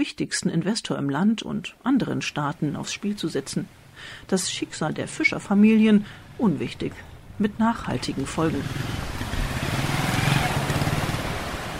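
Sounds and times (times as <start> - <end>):
speech: 0.0 - 9.0
powerful motorboat engine droning in the fishing harbour of Limbe in Cameroon: 6.8 - 11.7.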